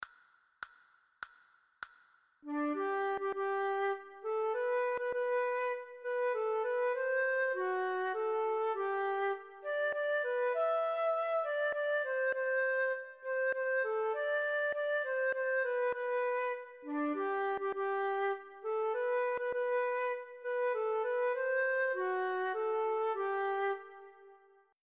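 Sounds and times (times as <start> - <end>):
recorder playing a Christmas carol: 2.5 - 24.6.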